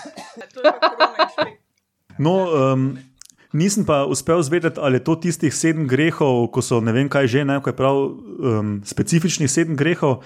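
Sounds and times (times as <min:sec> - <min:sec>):
fit of coughing with a throaty rasp: 0:00.0 - 0:00.6
laughter: 0:00.1 - 0:01.6
speech: 0:00.6 - 0:01.2, 0:02.2 - 0:10.2.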